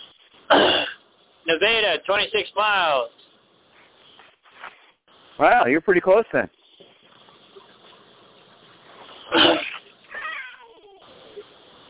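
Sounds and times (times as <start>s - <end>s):
speech: 1.5s - 3.2s, 5.4s - 6.6s
cats fighting, screeching, yowling and growling: 9.1s - 11.6s.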